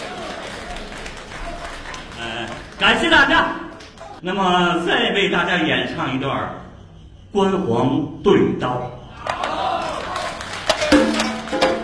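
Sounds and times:
audience applause at a traditional opera and ballad performance: 0:00.0 - 0:04.2, 0:09.6 - 0:11.8
speech: 0:02.2 - 0:03.6, 0:04.2 - 0:06.6, 0:07.3 - 0:09.0.

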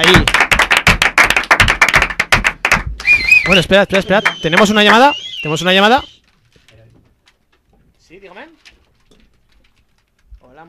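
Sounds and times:
speech: 0:00.0 - 0:00.4, 0:03.5 - 0:06.1
audience clapping: 0:00.0 - 0:06.0.

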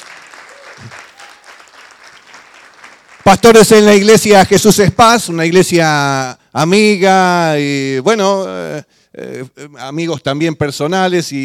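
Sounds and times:
audience applauding at an evening gathering: 0:00.0 - 0:03.9
speech: 0:03.2 - 0:11.4.

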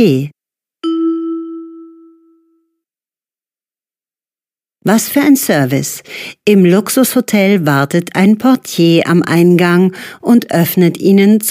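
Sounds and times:
speech: 0:00.0 - 0:00.4, 0:04.8 - 0:11.5
hotel reception desk bell ding: 0:00.8 - 0:02.7.

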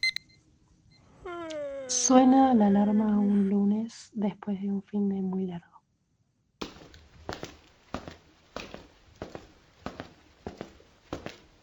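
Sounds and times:
speech: 0:01.9 - 0:05.7
footsteps of someone walking to the bathroom: 0:06.6 - 0:11.6.

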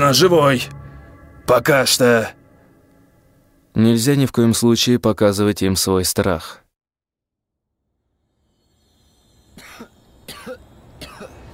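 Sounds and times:
speech: 0:00.1 - 0:00.8, 0:01.5 - 0:02.4, 0:03.8 - 0:06.6
man coughing while regaining consciousness: 0:09.6 - 0:11.5.

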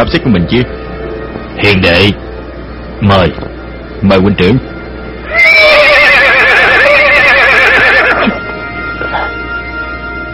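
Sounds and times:
speech: 0:00.0 - 0:00.8, 0:01.6 - 0:02.3, 0:03.0 - 0:04.7
warhorse whinnying: 0:05.2 - 0:08.4.

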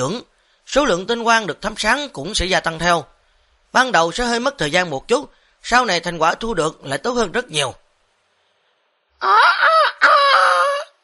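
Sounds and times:
speech: 0:00.0 - 0:03.1, 0:03.7 - 0:07.8, 0:09.2 - 0:10.2
rooster crowing at dawn: 0:09.2 - 0:11.0.

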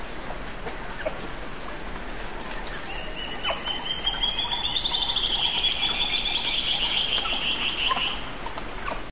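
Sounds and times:
background noise: 0:00.0 - 0:09.1
Band-tailed antbird (Hypocnemoides maculicauda) song: 0:02.0 - 0:08.3.

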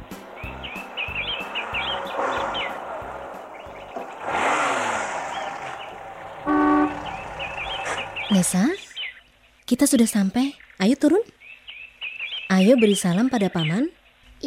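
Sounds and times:
steady low rumble: 0:00.0 - 0:08.3
birds chirping: 0:00.0 - 0:14.4
car horn toot: 0:06.4 - 0:07.2
speech: 0:08.4 - 0:08.8, 0:09.7 - 0:11.4, 0:12.5 - 0:14.4.

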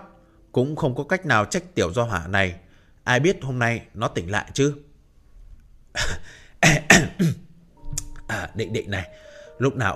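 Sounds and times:
speech: 0:00.5 - 0:04.9, 0:06.0 - 0:07.0, 0:08.3 - 0:09.9
person giving dry coughs: 0:06.0 - 0:07.5.

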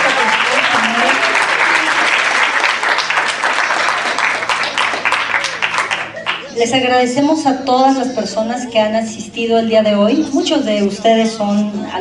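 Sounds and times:
audience applause at a university campus event: 0:00.0 - 0:06.6
crowd voices: 0:00.0 - 0:11.9
speech: 0:06.6 - 0:11.9.

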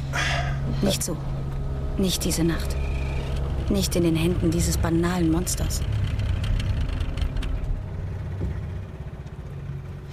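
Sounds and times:
failing boat engine rumbling: 0:00.0 - 0:10.1
speech: 0:00.8 - 0:01.4, 0:02.0 - 0:02.8, 0:03.7 - 0:06.0.

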